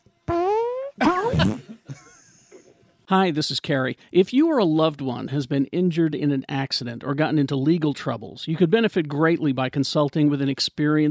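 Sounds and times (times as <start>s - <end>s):
person blowing a wet raspberry with the lips: 0.3s - 1.8s
laughter: 1.0s - 2.8s
speech: 3.1s - 11.0s.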